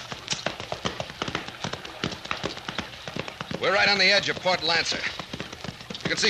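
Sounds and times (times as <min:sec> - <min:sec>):
horse hooves clip-clopping: 0:00.0 - 0:06.2
speech: 0:03.6 - 0:05.2, 0:06.1 - 0:06.2.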